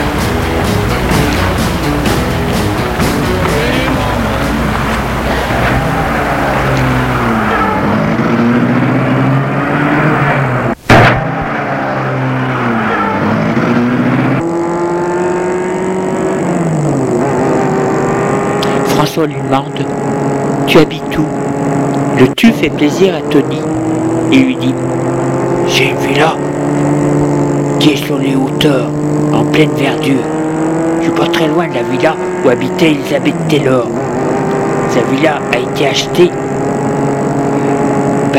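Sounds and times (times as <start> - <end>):
car engine rumbling and revving as the car pulls away: 0.0 - 38.3
sharp clunk: 10.9 - 11.3
speech: 19.2 - 20.0, 20.7 - 21.4, 22.2 - 24.9, 25.7 - 27.0, 27.8 - 30.3, 31.0 - 34.0, 34.9 - 36.5.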